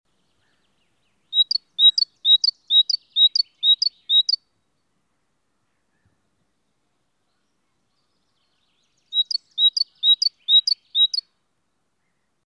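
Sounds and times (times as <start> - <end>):
great tit calling: 1.3 - 4.4, 9.1 - 11.2.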